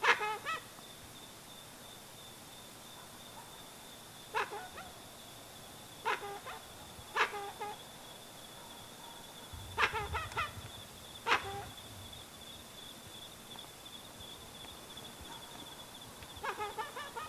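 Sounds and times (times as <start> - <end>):
steady high insect whine: 0.0 - 17.2
dusky-legged guan giving loud honking calls: 6.0 - 7.8, 9.7 - 10.6, 11.2 - 11.8, 16.4 - 17.2.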